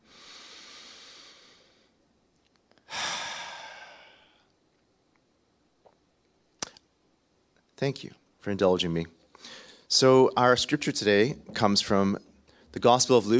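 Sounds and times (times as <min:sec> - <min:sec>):
deep breath taken during a church service: 0:00.0 - 0:02.0, 0:02.8 - 0:04.5, 0:09.3 - 0:09.9
speech: 0:07.8 - 0:13.3.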